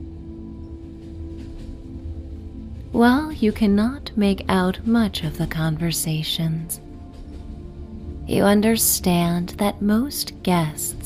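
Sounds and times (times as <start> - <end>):
low rumble and hum of a moving train: 0.0 - 11.0
speech: 3.0 - 6.8, 8.3 - 11.0.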